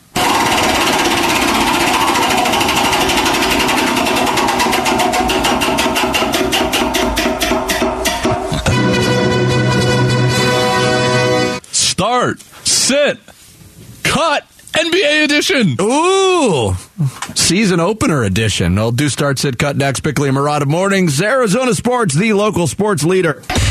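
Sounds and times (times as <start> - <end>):
steady tonal hum: 0.0 - 11.7
prize wheel spinning and clicking: 0.2 - 8.2
speech: 12.2 - 13.2, 14.8 - 16.8, 17.4 - 23.6.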